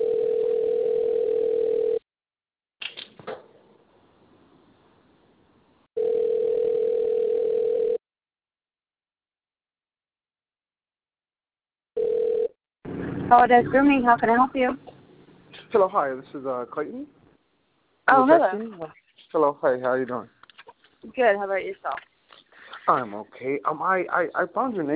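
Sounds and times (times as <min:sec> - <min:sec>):
telephone line tone while dialing out: 0:00.0 - 0:02.0, 0:06.0 - 0:08.0, 0:12.0 - 0:12.5
speech: 0:13.3 - 0:14.9, 0:15.7 - 0:17.2, 0:18.1 - 0:20.4, 0:21.0 - 0:22.1, 0:22.9 - 0:24.9.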